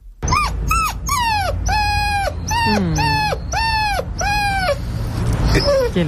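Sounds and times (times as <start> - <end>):
person imitating a dog whining for its dinner: 0.3 - 4.8
speech: 2.7 - 3.0, 5.6 - 6.0.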